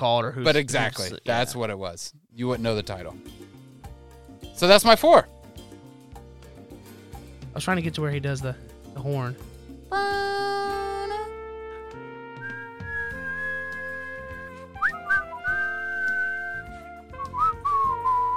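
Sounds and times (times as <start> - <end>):
speech: 0.0 - 3.4, 4.6 - 5.4, 7.6 - 10.4
backing music: 2.4 - 18.3
person whistling a tune: 12.4 - 18.3.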